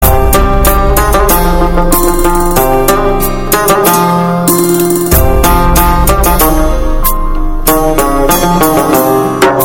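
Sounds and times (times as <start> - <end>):
guitar ringtone: 1.1 - 9.6.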